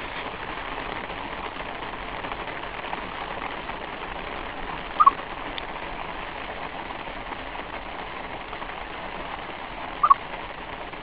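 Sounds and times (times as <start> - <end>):
steady hiss: 0.0 - 11.0
squirrel chirps: 5.0 - 5.2, 10.0 - 10.2.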